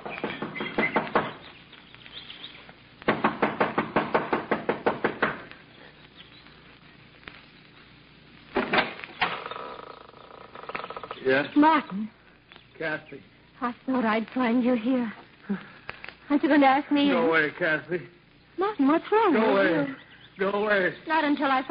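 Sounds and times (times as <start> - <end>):
impatient knocking on a wooden front door: 0.0 - 1.4, 3.1 - 5.4
speech: 11.3 - 12.2, 12.8 - 15.7, 16.3 - 18.2, 18.8 - 21.6.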